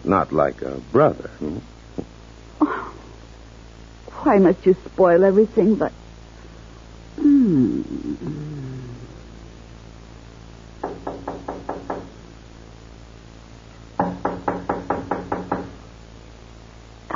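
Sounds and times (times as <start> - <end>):
speech: 0.1 - 2.7, 4.2 - 6.0, 7.2 - 8.4
knocking on a door: 10.8 - 12.2, 14.0 - 15.8.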